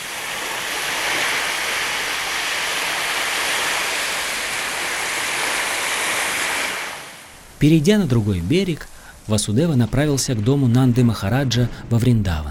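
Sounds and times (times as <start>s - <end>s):
churning river water surging with big waves: 0.0s - 9.8s
speech: 7.6s - 12.4s.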